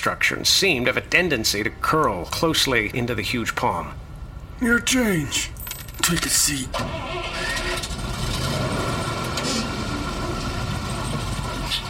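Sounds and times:
speech: 0.0 - 4.0, 4.6 - 7.6
bus engine idling: 6.0 - 11.8.

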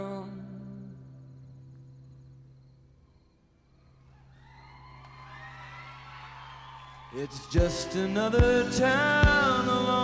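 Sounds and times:
large live concert crowd cheering: 4.1 - 9.3
scattered whoops and shouts from a live audience: 4.3 - 8.3
speech: 7.1 - 9.9.

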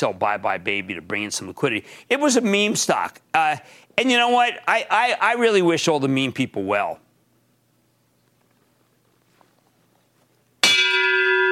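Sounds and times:
speech: 0.0 - 7.0
single loud metallic bell strike tolling: 10.6 - 11.4.

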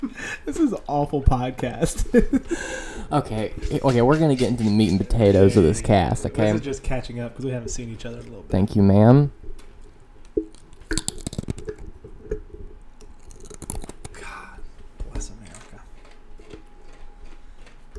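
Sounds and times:
speech: 0.0 - 9.4
person crunching on crunchy Chex Mix snack: 10.5 - 11.9, 13.1 - 14.2, 15.4 - 15.7.

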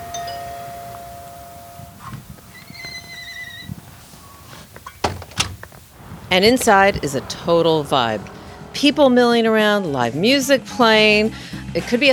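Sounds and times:
storefront door creaking open with squealing hinges: 2.0 - 8.7
speech: 6.3 - 12.1.

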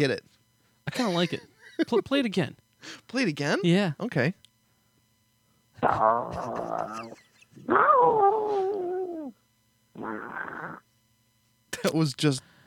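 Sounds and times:
speech: 0.0 - 4.4, 5.8 - 9.4, 10.0 - 10.8, 11.8 - 12.5
cat yowling caught in a car engine's serpentine or accessory belt: 5.9 - 9.3.

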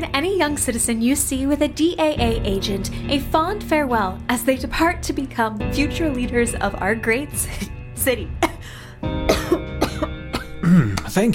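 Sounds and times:
speech: 0.0 - 9.6, 10.8 - 11.3
harsh raspy coughing from an unrecovered cough: 8.4 - 11.3.

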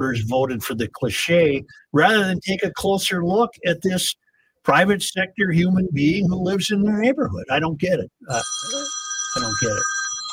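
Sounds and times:
speech: 0.0 - 9.9
telephone ringing with a high electronic tone: 8.3 - 10.3.

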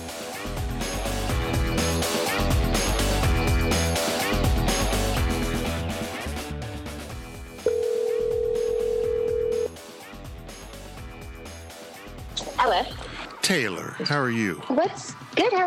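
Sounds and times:
upbeat music: 0.0 - 13.6
steady electronic phone ringing tone: 7.6 - 9.7
speech: 13.5 - 15.6.

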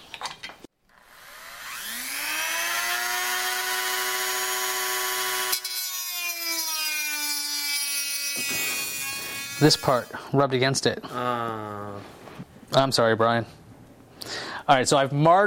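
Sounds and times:
Dremel rotary tool cutting into plastic Nintendo console: 0.9 - 10.1
speech: 9.6 - 13.6, 14.2 - 15.4.

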